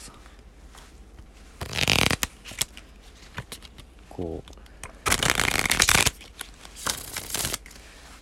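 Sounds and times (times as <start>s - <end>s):
deck of playing cards being shuffled: 1.6s - 3.9s, 5.0s - 7.8s
speech: 4.2s - 4.6s.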